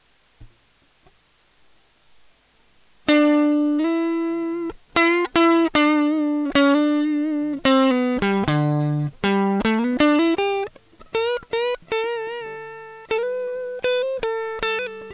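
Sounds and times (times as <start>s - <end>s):
guitar melody: 3.1s - 15.1s.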